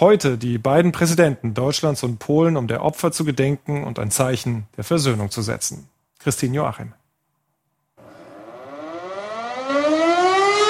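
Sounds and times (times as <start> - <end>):
speech: 0.0 - 7.0
air raid siren wailing: 8.0 - 10.6.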